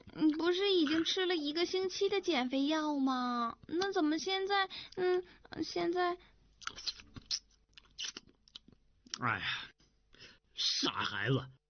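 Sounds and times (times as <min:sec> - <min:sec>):
speech: 0:00.2 - 0:07.0, 0:09.2 - 0:09.7, 0:10.6 - 0:11.6
person chewing a greasy braised pork knuckle: 0:06.6 - 0:09.2.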